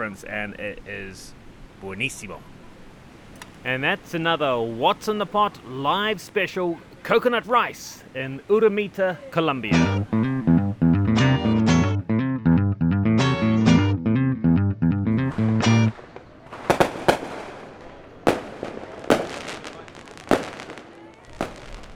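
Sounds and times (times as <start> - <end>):
speech: 0.0 - 2.6, 3.6 - 10.2
loud tonal music: 9.8 - 16.0
fireworks let off from rooftops in Medellin Colombia for Alborada celebration: 15.9 - 21.9.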